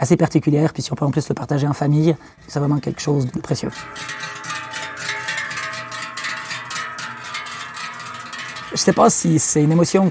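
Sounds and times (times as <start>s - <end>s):
speech: 0.0s - 4.6s, 8.7s - 10.1s
many cowbells clanging on a herd of cows moving downhill: 2.6s - 10.1s.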